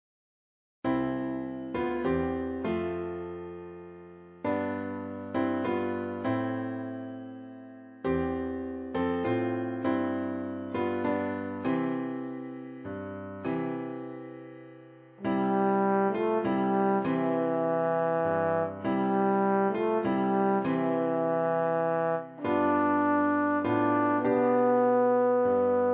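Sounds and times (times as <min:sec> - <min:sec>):
piano accompaniment: 0:00.9 - 0:25.9
trombone playing a Christmas carol: 0:15.3 - 0:25.9.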